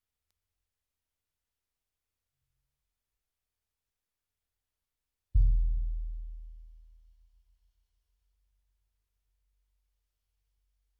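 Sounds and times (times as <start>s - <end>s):
bass drum: 5.4s - 7.2s.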